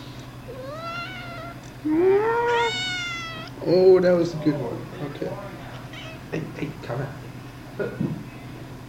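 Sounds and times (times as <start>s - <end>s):
low steady hum: 0.0s - 8.8s
cat meowing: 0.5s - 1.6s, 2.2s - 3.6s, 5.8s - 6.3s
speech: 1.8s - 2.1s, 3.6s - 5.6s, 6.3s - 7.2s, 7.8s - 8.2s.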